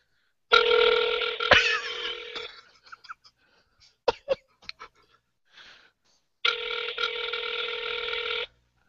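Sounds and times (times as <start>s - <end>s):
telephone ringback tones on an outgoing call: 0.5s - 2.5s, 6.4s - 8.5s
cough-like noise: 3.8s - 4.5s.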